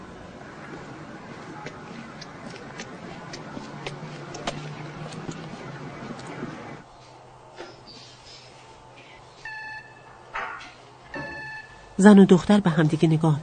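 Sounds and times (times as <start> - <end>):
steady noise: 0.0 - 13.4
intercom buzzer ringing at a building's front door: 9.5 - 10.2, 11.1 - 12.0
speech: 12.0 - 13.4.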